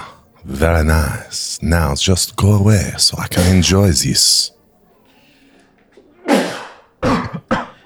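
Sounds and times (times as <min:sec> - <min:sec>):
speech: 0:00.6 - 0:04.5
person sneezing: 0:06.3 - 0:07.8.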